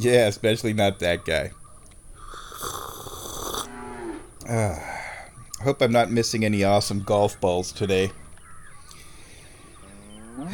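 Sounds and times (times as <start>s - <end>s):
speech: 0.0s - 1.6s, 4.5s - 5.0s, 5.6s - 8.2s, 10.4s - 10.5s
cows mooing: 3.6s - 4.8s, 9.1s - 10.5s.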